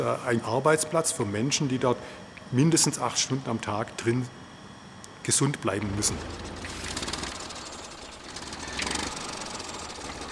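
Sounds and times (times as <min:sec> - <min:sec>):
speech: 0:00.0 - 0:04.4, 0:05.2 - 0:06.6
tractor engine running with low throbbing chug and rhythmic knock: 0:05.8 - 0:10.2.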